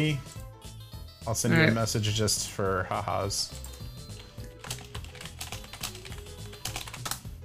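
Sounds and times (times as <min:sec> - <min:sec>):
speech: 0:00.0 - 0:00.4, 0:01.2 - 0:03.8
typing on a cheap computer keyboard: 0:03.6 - 0:07.2.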